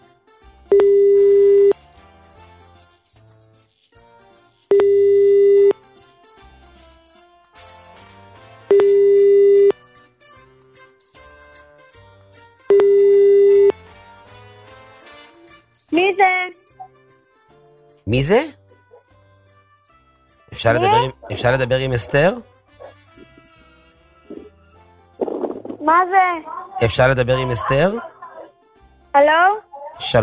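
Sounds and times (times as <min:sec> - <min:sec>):
quiet music: 0:00.0 - 0:30.2
telephone busy signal beeps after dialing: 0:00.7 - 0:01.8, 0:04.7 - 0:05.8, 0:08.7 - 0:09.8, 0:12.7 - 0:13.8
speech: 0:18.1 - 0:18.6, 0:20.6 - 0:22.5, 0:26.0 - 0:28.1.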